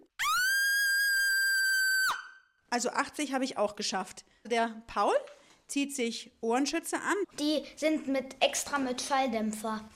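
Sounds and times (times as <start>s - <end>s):
loud high-pitched human scream: 0.2s - 2.4s
speech: 2.7s - 9.9s.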